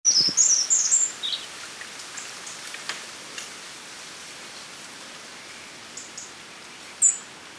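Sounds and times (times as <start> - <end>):
European robin Erithacus rubecula song: 0.1 - 1.5
soft background hiss: 0.1 - 7.5.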